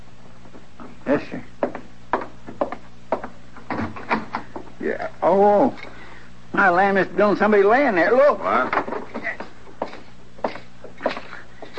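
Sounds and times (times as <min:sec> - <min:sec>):
speech: 0:01.1 - 0:01.6, 0:04.9 - 0:08.9
irregular wooden knocks and clattering bursts: 0:01.6 - 0:04.7, 0:08.5 - 0:11.7
door rattled and jostled from the outside: 0:03.6 - 0:04.5.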